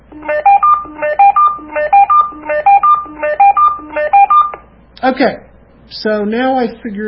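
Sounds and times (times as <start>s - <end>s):
walkie-talkie call ringtone beeping melody: 0.2s - 4.6s
speech: 5.0s - 7.0s.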